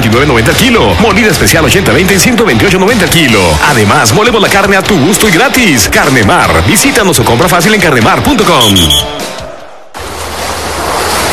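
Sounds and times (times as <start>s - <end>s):
speech: 0.1s - 9.3s
ocean waves reaching the coast: 9.0s - 11.3s.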